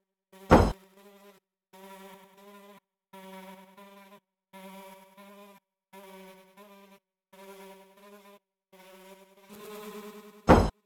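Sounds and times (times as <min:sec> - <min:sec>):
buzzing: 0:00.5 - 0:00.7, 0:10.5 - 0:10.7.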